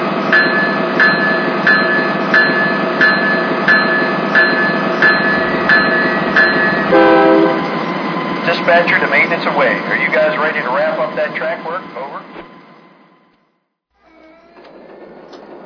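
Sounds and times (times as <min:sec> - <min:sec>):
train rumbling as it comes to a stop: 0:00.0 - 0:13.4, 0:14.0 - 0:15.6
brighter horn-like tone: 0:06.9 - 0:07.7
speech: 0:08.7 - 0:12.0.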